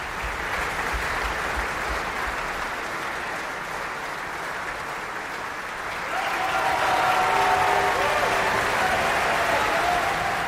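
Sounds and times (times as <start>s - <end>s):
audience applause after an opera performance in Bayreuth: 0.0s - 10.4s.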